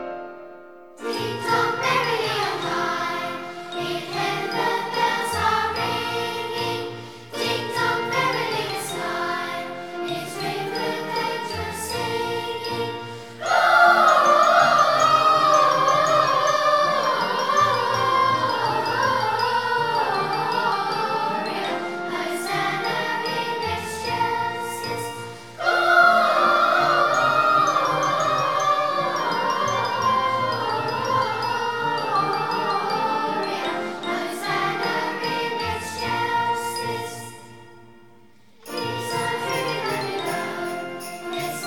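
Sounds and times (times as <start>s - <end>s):
children's choir singing a Christmas carol: 1.0s - 41.6s.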